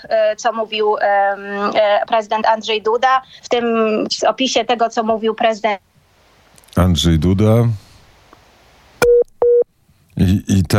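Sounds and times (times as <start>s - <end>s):
speech: 0.0s - 5.9s, 6.8s - 7.8s, 10.2s - 10.7s
telephone tone beeps after a call is disconnected: 9.0s - 9.6s.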